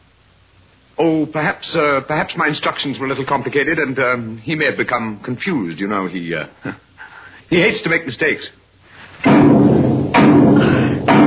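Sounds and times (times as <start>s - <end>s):
speech: 1.0s - 6.8s, 7.5s - 8.6s
heavy old door knocker banging: 9.3s - 11.2s.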